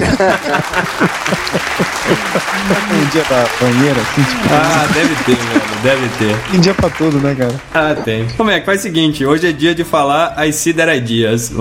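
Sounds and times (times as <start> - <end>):
applause: 0.0 - 7.8
people talking and laughing: 0.0 - 8.4
speech: 0.2 - 11.5.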